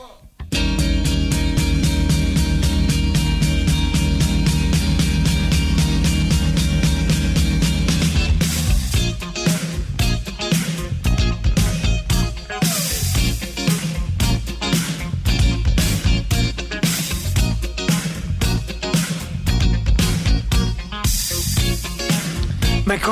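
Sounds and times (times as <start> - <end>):
drums with a steady punchy beat: 0.4 - 23.1
sustained chords ringing in a pop-rock demo: 0.5 - 8.0
dense full-band pop-rock demo music: 0.5 - 23.1.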